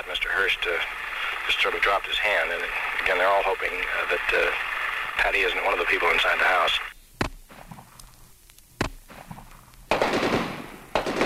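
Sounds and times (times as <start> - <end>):
speech: 0.5 - 6.9
single sharp gunshot: 8.8 - 11.2
automatic gunfire during police siege: 9.1 - 11.2.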